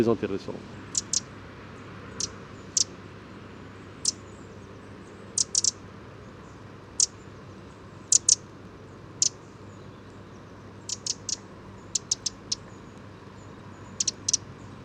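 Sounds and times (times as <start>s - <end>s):
soft outdoor hiss: 0.0s - 14.8s
Eurasian wren alarm call: 0.9s - 1.3s, 2.1s - 2.9s, 5.4s - 5.8s, 8.1s - 8.4s, 10.8s - 13.0s, 13.8s - 14.4s.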